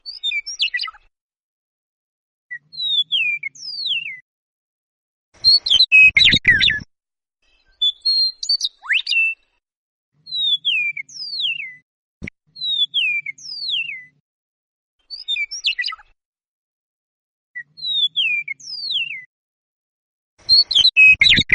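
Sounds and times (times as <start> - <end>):
Eastern Meadowlark singing slurred whistled phrases: 0.0 - 1.0, 2.5 - 4.2, 5.4 - 6.9, 7.6 - 9.4, 10.3 - 11.8, 12.6 - 14.2, 15.1 - 16.0, 17.6 - 19.3, 20.5 - 21.5.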